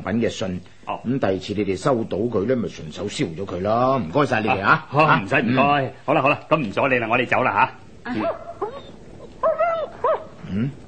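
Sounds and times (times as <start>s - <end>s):
speech: 0.0s - 8.8s, 10.5s - 10.8s
dog yipping and whimpering: 8.2s - 10.3s.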